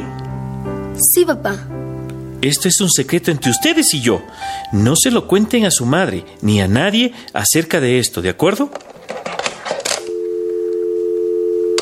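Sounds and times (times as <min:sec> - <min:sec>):
speech: 0:01.0 - 0:09.0
steady telephone dial tone: 0:09.9 - 0:11.8.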